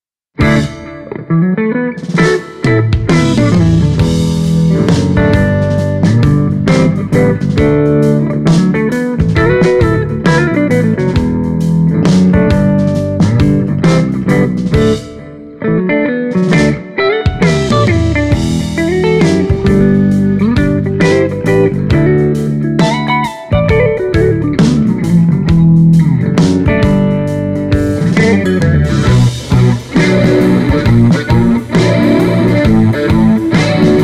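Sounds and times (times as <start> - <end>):
Les Paul electric guitar through G12H 75 speaker: 0.4 - 34.0.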